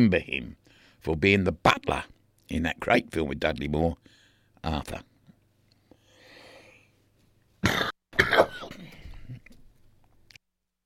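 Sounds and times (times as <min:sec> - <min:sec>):
speech: 0:00.0 - 0:05.1
person coughing: 0:07.6 - 0:09.5.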